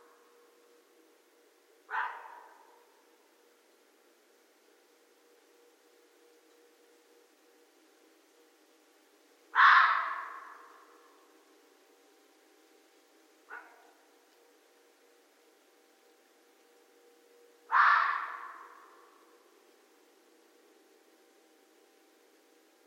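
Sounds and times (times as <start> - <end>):
faint steady hum: 0.0 - 22.8
red fox harsh hoarse barks: 1.9 - 3.0, 9.5 - 11.3, 13.5 - 14.0, 17.7 - 19.3.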